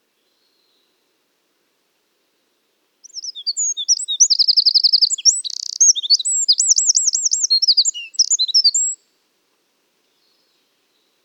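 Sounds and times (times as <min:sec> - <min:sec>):
Troglodytes troglodytes Eurasian wren singing: 0:03.0 - 0:09.0.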